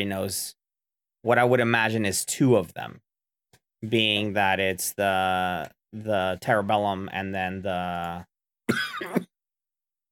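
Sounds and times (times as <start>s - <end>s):
speech: 0.0s - 0.6s, 1.2s - 3.0s, 3.8s - 9.3s
person coughing: 8.7s - 9.4s.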